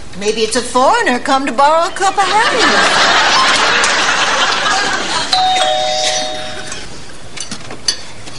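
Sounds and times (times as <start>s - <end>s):
speech: 0.2s - 4.0s
laughter: 1.9s - 5.4s
doorbell two-tone chime: 5.3s - 6.8s.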